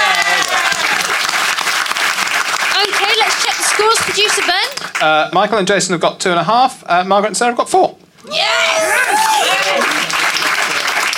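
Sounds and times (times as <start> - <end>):
studio audience applause: 0.0 - 5.2, 8.4 - 11.1
speech: 4.0 - 10.1.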